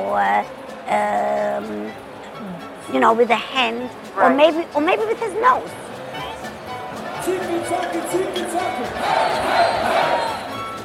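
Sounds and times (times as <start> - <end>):
speech: 0.1 - 5.8, 7.2 - 10.2
crowd applauding: 7.0 - 10.7
people whooping: 8.6 - 10.6.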